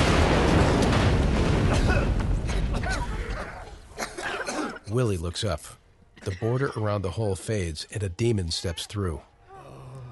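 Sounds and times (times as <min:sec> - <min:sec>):
tunnel explosion heavy rumbling blast: 0:00.0 - 0:04.0
speech: 0:05.0 - 0:09.3.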